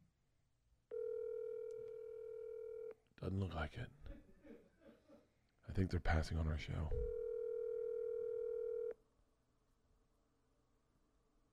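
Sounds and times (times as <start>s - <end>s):
electronic phone ringing tone: 0.9s - 3.0s, 7.1s - 9.0s
speech: 3.2s - 4.2s, 5.7s - 7.2s.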